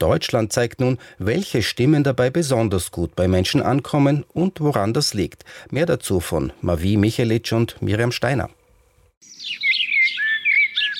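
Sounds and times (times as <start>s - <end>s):
speech: 0.0s - 8.6s
birdsong chirps and trills: 9.2s - 10.9s.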